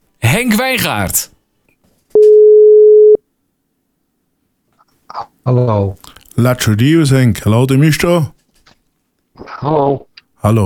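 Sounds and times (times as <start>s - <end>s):
speech: 0.4s - 1.4s, 5.1s - 8.4s, 9.4s - 10.6s
telephone ringing tone while placing a call: 2.2s - 3.2s.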